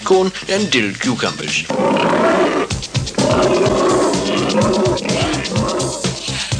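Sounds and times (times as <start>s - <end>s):
speech: 0.1s - 5.3s
tiger roaring and growling: 1.7s - 6.5s.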